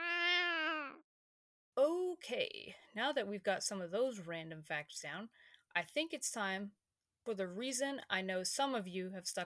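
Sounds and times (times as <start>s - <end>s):
cat meowing: 0.0s - 1.0s
speech: 1.8s - 9.4s.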